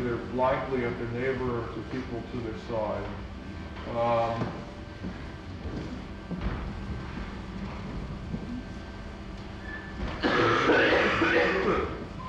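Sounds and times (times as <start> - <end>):
speech: 0.2 - 6.7
several people coughing in a group: 10.2 - 12.1.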